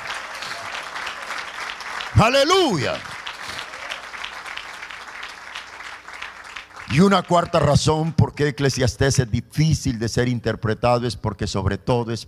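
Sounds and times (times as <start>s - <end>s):
audience clapping in praise to the Lord: 0.0s - 8.1s
speech: 2.2s - 3.1s, 6.9s - 12.2s.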